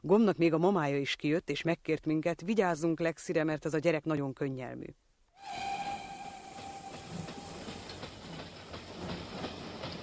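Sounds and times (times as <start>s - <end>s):
speech: 0.0s - 5.8s
thin whistling tone: 5.4s - 8.4s
train pulling away from a station with a rumbling roar: 5.4s - 10.0s.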